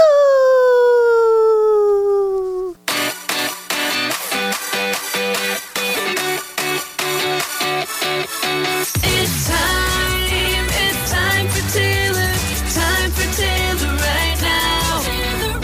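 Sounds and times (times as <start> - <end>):
person imitating a lazy wolf howl: 0.0 - 2.8
loud rhythmic music: 2.9 - 15.6.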